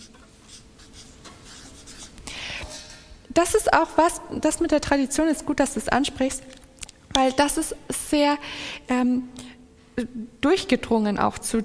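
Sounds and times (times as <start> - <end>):
pen scratching on paper in handwriting: 0.0 - 2.2
speech: 3.4 - 6.5, 7.2 - 9.4, 10.0 - 11.6.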